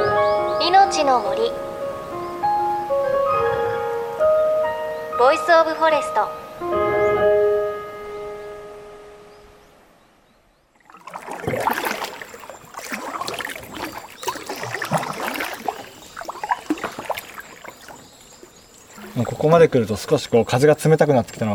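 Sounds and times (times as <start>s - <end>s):
sustained tonal chord: 0.0s - 9.6s
speech: 0.6s - 1.7s, 5.2s - 6.7s, 19.4s - 21.5s
kayak paddle strokes splashing and swishing through water: 10.8s - 21.5s.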